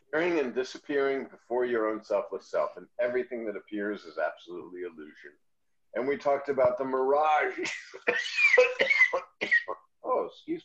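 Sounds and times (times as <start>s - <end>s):
speech: 0.1s - 10.6s
person coughing: 8.0s - 9.8s.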